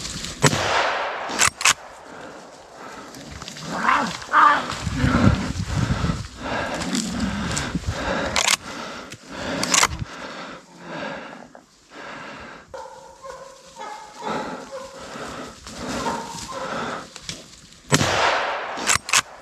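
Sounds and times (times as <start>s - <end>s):
gunshots at a bear: 0.4s - 2.8s, 17.9s - 19.3s
rustling: 1.3s - 10.0s, 12.8s - 17.9s
animal-like noises: 2.0s - 17.4s.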